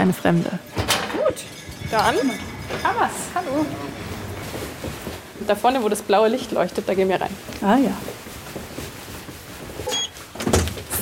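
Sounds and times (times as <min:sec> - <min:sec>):
speech: 0:00.0 - 0:00.7, 0:01.9 - 0:04.1, 0:04.8 - 0:08.2
heavy door pushed open with a creak: 0:00.7 - 0:05.4.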